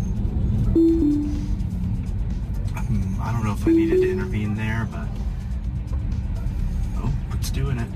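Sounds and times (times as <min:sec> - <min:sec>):
road rumble from a Tesla Model 3 overtaking a garbage truck: 0:00.0 - 0:07.9
low engine drone: 0:00.2 - 0:06.4
speech: 0:03.5 - 0:05.2, 0:07.4 - 0:07.9.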